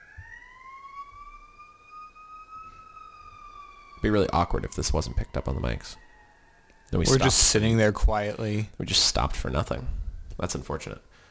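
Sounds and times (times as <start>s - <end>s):
emergency vehicle siren wailing outside: 0.0s - 7.8s
low rumble of traffic: 0.0s - 11.1s
speech: 4.0s - 6.1s, 6.9s - 11.1s.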